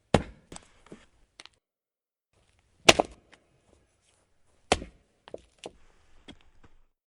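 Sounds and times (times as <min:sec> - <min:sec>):
medium chop of a tree: 0:00.1 - 0:00.6, 0:02.8 - 0:03.4, 0:04.6 - 0:05.8.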